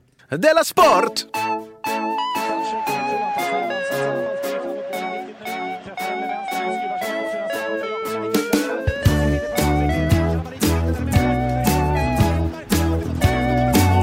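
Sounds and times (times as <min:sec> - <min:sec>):
speech: 0:00.3 - 0:01.6
upbeat instrumental podcast theme jingle with bass and drums: 0:00.4 - 0:14.0.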